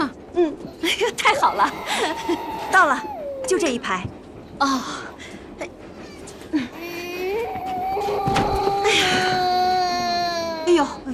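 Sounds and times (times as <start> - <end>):
speech: 0.0 - 5.8
young child crying in wavering wails and sobs: 1.2 - 3.6, 6.0 - 11.0.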